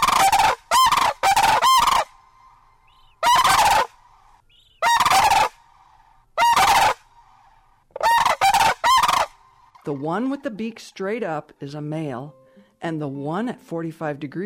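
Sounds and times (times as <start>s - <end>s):
lesser sandhill crane mated pair giving a unison call: 0.0s - 10.7s
speech: 9.9s - 14.4s.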